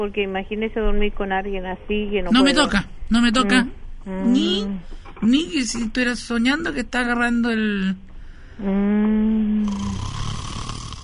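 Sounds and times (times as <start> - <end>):
speech: 0.0 - 10.2
person snoring: 8.6 - 11.0.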